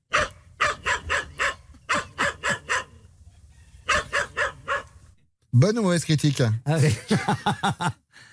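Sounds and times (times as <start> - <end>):
Tibetan spaniel barking: 0.1 - 3.1, 3.8 - 5.0
speech: 5.5 - 8.3
laughter: 6.8 - 8.0.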